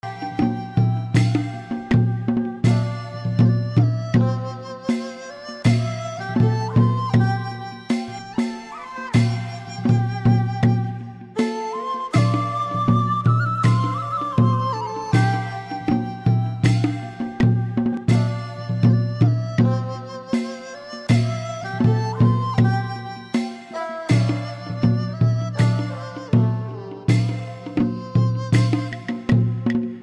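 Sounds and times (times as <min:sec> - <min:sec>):
Asian instruments ambience: 0:00.0 - 0:30.0.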